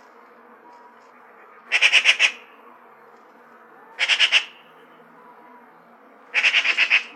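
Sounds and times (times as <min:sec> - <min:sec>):
Eurasian magpie rattling harsh chatter: 0:01.7 - 0:02.5, 0:04.0 - 0:04.6, 0:06.3 - 0:07.1.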